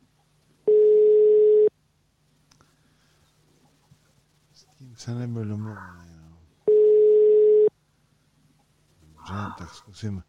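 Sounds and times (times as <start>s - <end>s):
telephone ringback tone of a call to a work phone: 0.7s - 1.7s, 6.7s - 7.7s
speech: 5.0s - 6.1s, 9.3s - 10.2s.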